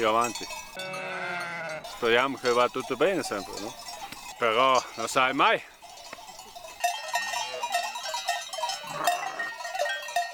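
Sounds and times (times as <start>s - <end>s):
speech: 0.0s - 1.0s, 2.0s - 3.8s, 4.4s - 5.7s
bells clanking and jingling on a moving flock of sheep: 0.0s - 10.3s
sheep bleating: 0.8s - 2.2s, 8.8s - 9.7s.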